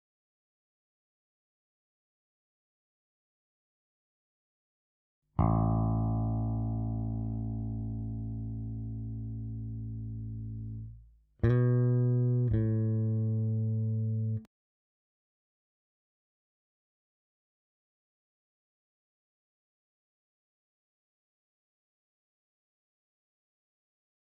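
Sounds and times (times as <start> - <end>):
bass: 5.4 - 14.5.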